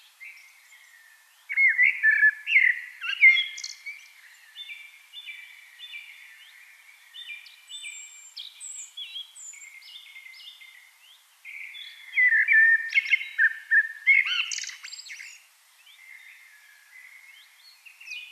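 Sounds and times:
Eurasian blackbird song with fluted warble and thin high whistles: 0.0 - 18.3.

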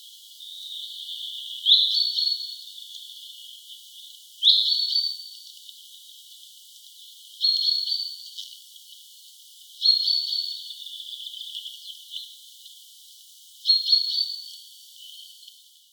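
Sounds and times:
common chaffinch Fringilla coelebs calls: 0.4 - 3.7, 4.4 - 5.2, 7.4 - 8.2, 9.8 - 12.3.

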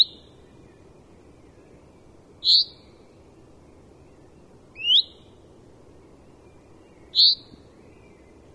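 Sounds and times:
steady low hiss: 0.0 - 8.5
common chaffinch Fringilla coelebs short high calls: 2.4 - 3.0, 4.7 - 5.4, 6.6 - 7.7.

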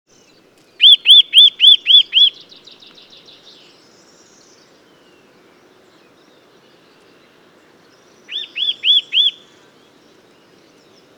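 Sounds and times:
Eurasian nuthatch calling: 0.8 - 2.5, 8.2 - 9.6.

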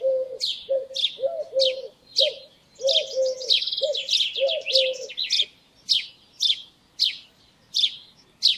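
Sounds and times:
house sparrow Passer domesticus chirping: 0.0 - 8.5
low tonal bird notes: 0.0 - 8.5.

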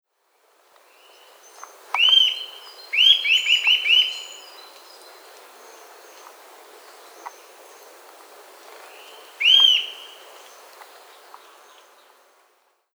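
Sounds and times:
Eurasian nuthatch Sitta europaea ringing calls: 1.6 - 4.6, 8.9 - 10.2.

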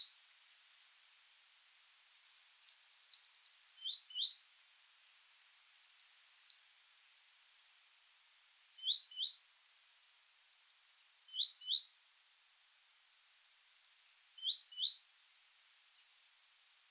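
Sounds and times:
Eurasian blue tit calling: 2.4 - 4.4, 5.2 - 6.7, 8.6 - 9.4, 10.6 - 11.9, 14.2 - 16.2.

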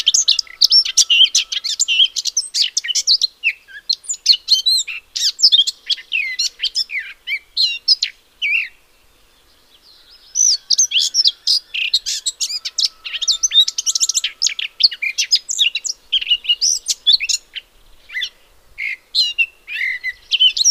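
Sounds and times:
Eurasian blackcap Sylvia atricapilla singing: 0.0 - 8.8, 9.8 - 20.7.

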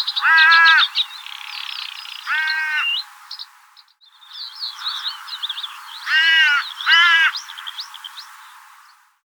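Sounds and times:
small birds twittering and chirping: 0.0 - 9.2
Corvus corone carrion crow cawing: 0.1 - 1.1, 2.2 - 3.0, 4.7 - 7.9.

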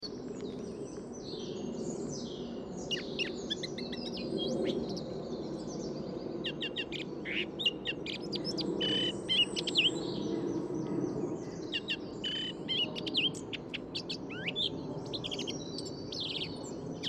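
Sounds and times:
Eurasian blackcap Sylvia atricapilla singing: 0.3 - 17.0.

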